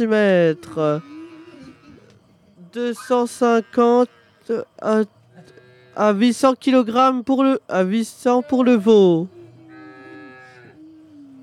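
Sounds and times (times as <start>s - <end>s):
speech: 0.0s - 1.1s, 2.8s - 5.2s, 6.0s - 9.4s
cow mooing: 0.8s - 2.1s, 3.0s - 4.4s, 5.4s - 6.1s, 9.2s - 11.4s.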